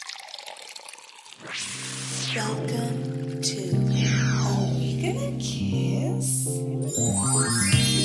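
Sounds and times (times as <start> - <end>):
beer pouring into a glass: 0.0 - 1.6
speech: 1.4 - 4.1, 5.4 - 7.9.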